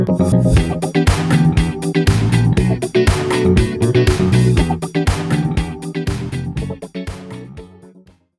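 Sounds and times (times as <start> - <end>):
step sequencer effect made in Logic Pro: 0.1 - 7.9.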